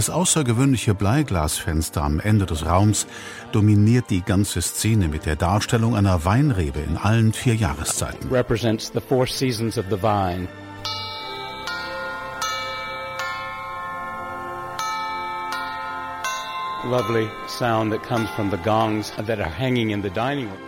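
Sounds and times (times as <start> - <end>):
speech: 0.0 - 11.1, 16.9 - 20.6
dining room dinner gong being struck: 10.8 - 20.6.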